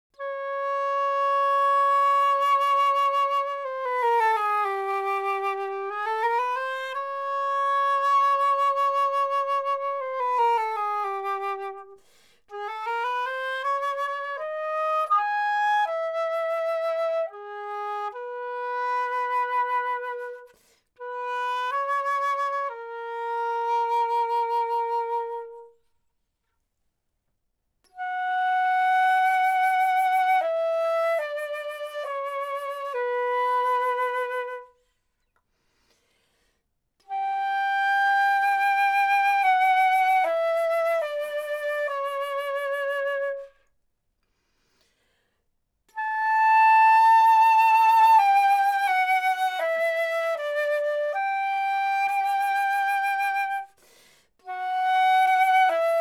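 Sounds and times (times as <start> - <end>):
flute instrumental: 0.2 - 25.8, 27.9 - 34.8, 37.1 - 43.7, 45.9 - 53.8, 54.4 - 55.9.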